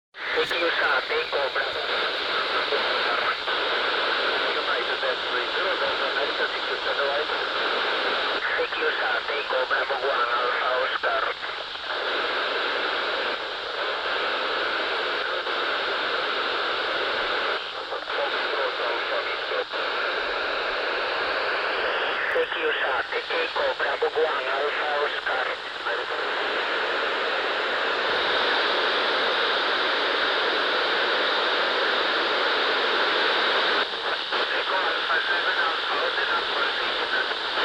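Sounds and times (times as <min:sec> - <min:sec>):
SaudiSat SO-50 satellite FM signal on 436 800MHz: 0:00.2 - 0:37.6.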